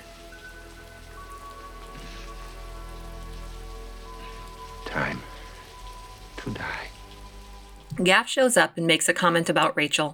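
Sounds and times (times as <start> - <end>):
rain on a rooftop: 0.0 - 8.1
speech: 6.5 - 6.9, 8.0 - 10.1.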